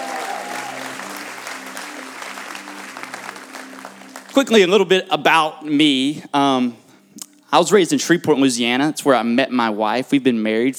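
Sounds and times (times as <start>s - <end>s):
large crowd applauding: 0.0s - 5.1s
speech: 4.4s - 6.8s, 7.5s - 10.7s.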